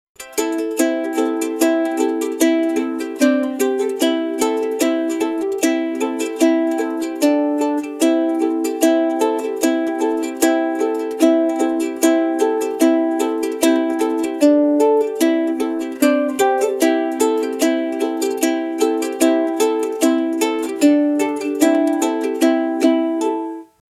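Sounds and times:
catchy ukulele melody: 0.2s - 23.8s.

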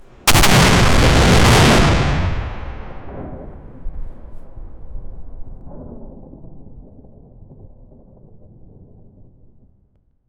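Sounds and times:
thunderous boom of a cannon firing: 0.2s - 6.8s.

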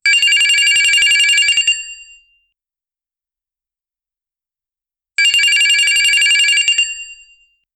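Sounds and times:
realistic mobile phone ringtone: 0.1s - 2.0s, 5.2s - 7.2s.

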